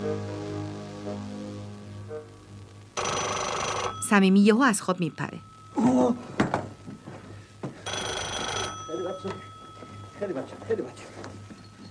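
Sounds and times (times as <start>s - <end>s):
desk telephone ringing with an electronic trill: 3.0s - 11.8s
speech: 4.1s - 5.5s, 10.2s - 11.4s.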